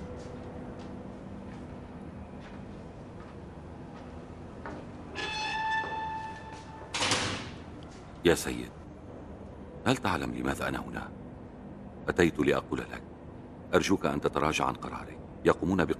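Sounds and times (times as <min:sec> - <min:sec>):
door creaking on its hinges: 0:05.1 - 0:07.6
speech: 0:08.2 - 0:08.8, 0:09.9 - 0:11.2, 0:12.1 - 0:13.1, 0:13.7 - 0:15.9.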